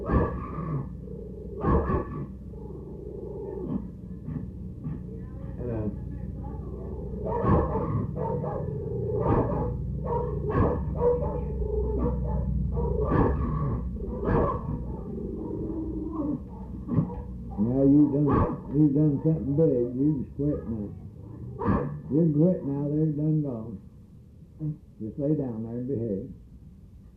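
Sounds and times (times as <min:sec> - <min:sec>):
Chihuahua barking in sharp yaps: 0:00.0 - 0:00.8, 0:01.6 - 0:02.8, 0:06.4 - 0:19.5, 0:21.5 - 0:22.1
indistinct voices: 0:00.0 - 0:23.9
speech: 0:19.2 - 0:23.9, 0:24.6 - 0:26.4.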